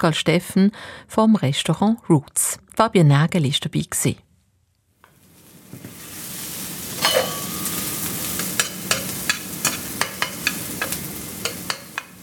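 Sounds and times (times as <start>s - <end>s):
speech: 0.0s - 4.3s
carrots, peppers, onions and meatballs frying in a pan at a cooking course: 5.0s - 12.2s
utensil scraping while stirring food in a pan: 6.8s - 12.2s.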